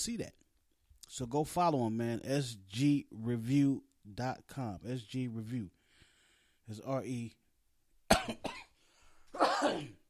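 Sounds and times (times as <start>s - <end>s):
speech: 0.0s - 0.4s, 1.1s - 5.8s, 6.7s - 7.4s, 9.6s - 10.0s
person coughing: 8.1s - 8.8s, 9.4s - 10.0s.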